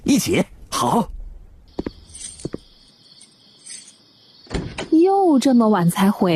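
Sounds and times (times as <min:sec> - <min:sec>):
speech: 0:00.1 - 0:01.2, 0:05.0 - 0:06.3
crickets chirping at night: 0:00.1 - 0:06.3
footsteps thudding: 0:01.7 - 0:02.8.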